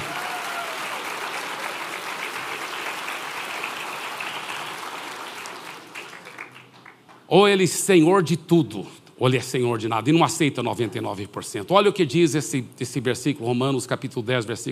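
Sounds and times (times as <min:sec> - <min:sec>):
crowd clapping loudly and steadily: 0:00.0 - 0:07.3
speech: 0:07.3 - 0:14.6.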